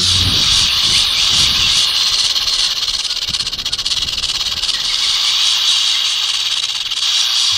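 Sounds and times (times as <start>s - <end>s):
rattlesnake tail rattle buzzing: 0.0s - 7.5s.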